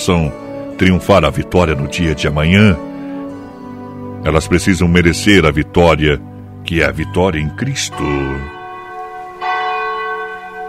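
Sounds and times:
speech: 0.0 - 2.9, 4.2 - 8.6
large cathedral church bell tolling: 0.0 - 10.6.

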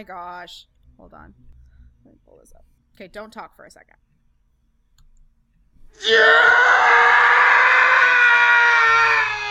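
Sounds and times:
speech: 0.0 - 4.0, 6.0 - 6.7
loud sustained male scream stock sound effect: 6.0 - 9.4.

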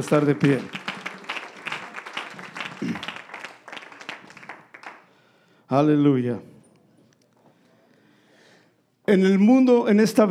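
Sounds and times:
speech: 0.0 - 0.8, 5.7 - 6.5, 9.1 - 10.2
audience applauding: 0.0 - 5.3.

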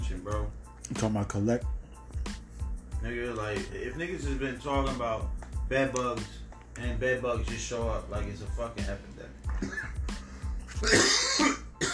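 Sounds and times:
speech: 0.2 - 1.8, 3.0 - 9.9, 10.8 - 11.6
rasping throat clearing: 9.5 - 10.0, 10.7 - 11.9
person coughing: 9.5 - 10.1, 10.7 - 11.9.

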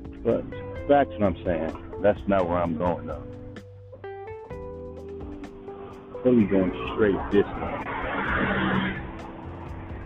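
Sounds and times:
speech: 0.2 - 3.4, 6.2 - 8.8
bus driving past with low engine drone: 5.7 - 10.0.

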